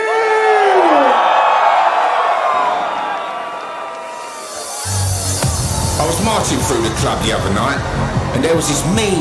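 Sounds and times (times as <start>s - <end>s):
festival crowd screaming and cheering as a DJ is introduced: 0.0s - 9.1s
thumping beat: 4.9s - 9.0s
speech: 6.4s - 9.1s.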